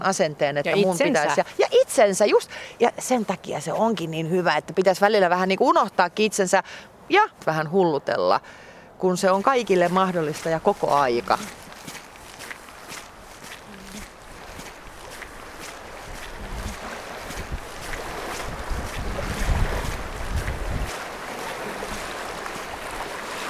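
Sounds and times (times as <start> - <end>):
speech: 0.0 - 11.6
gusts of wind buffeting the microphone: 9.4 - 23.4
sea waves washing against a boat: 9.9 - 23.4.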